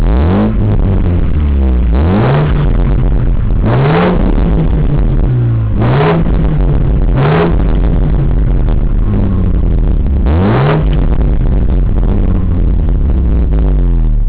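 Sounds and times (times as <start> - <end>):
engine revving: 0.0 - 14.2.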